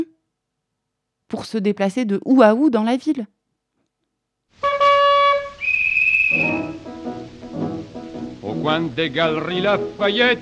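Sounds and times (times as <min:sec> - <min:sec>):
speech: 0:01.3 - 0:03.4, 0:08.6 - 0:10.3
traffic officer blowing a pea whistle at a crossroads: 0:04.6 - 0:06.9.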